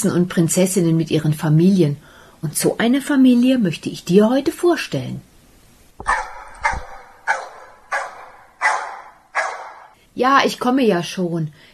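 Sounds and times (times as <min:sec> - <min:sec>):
speech: 0:00.0 - 0:05.3, 0:10.2 - 0:11.7
two dogs barking: 0:06.0 - 0:10.0.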